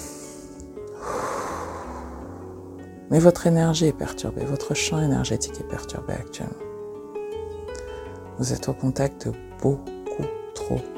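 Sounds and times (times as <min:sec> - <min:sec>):
soft steady musical drone: 0:00.0 - 0:03.8
deep breath during a guided breathing exercise: 0:00.1 - 0:02.8
speech: 0:03.1 - 0:06.7, 0:08.4 - 0:10.9.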